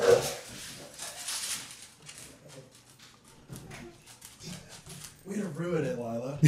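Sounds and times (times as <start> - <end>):
pit bull barking: 0.0 - 0.4
rustling: 0.0 - 5.6
speech: 5.6 - 6.4.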